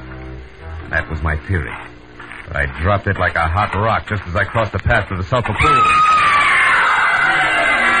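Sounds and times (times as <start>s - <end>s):
speech: 0.9s - 6.4s
woman screaming near a sulfur spring pool: 5.7s - 7.9s.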